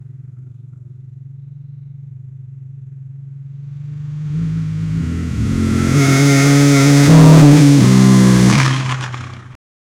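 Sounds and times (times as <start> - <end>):
cinematic motorbike engine: 3.5 - 9.6.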